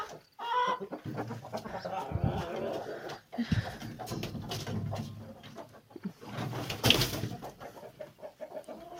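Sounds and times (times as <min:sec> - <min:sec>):
chickens clucking: 0:00.0 - 0:08.9
rooster wing flapping as it comes down: 0:06.4 - 0:07.5.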